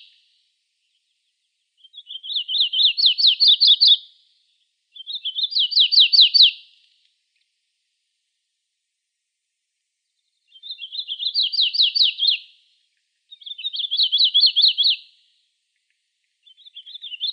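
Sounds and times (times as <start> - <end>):
warbler singing fast high slurred notes in Arizona: 0.8 - 6.7, 10.1 - 12.6, 13.3 - 15.2, 16.4 - 17.3.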